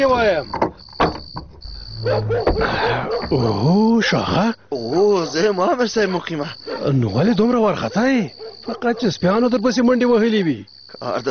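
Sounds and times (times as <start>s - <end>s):
speech: 0.0s - 0.6s, 2.0s - 11.2s
door being opened: 0.0s - 3.7s
faint steady tone: 0.0s - 11.2s.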